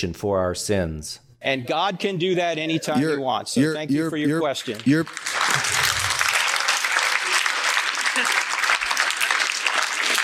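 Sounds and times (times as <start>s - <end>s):
speech: 0.0s - 5.9s
audience applause: 4.7s - 10.2s.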